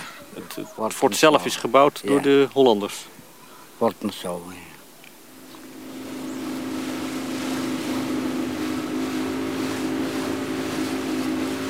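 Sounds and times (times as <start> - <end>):
water rushing: 0.0 - 11.6
wind: 0.0 - 11.6
speech: 0.4 - 3.2, 3.8 - 4.7
boat engine droning between Bandanera and Lontor in the Banda Islands: 5.3 - 11.6.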